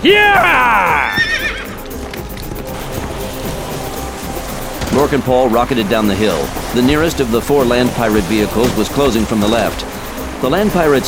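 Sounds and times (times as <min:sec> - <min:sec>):
speech: 0:00.0 - 0:00.3, 0:05.0 - 0:11.0
horse whinnying: 0:00.0 - 0:02.3
hooves of a ridden horse galloping: 0:00.0 - 0:11.0.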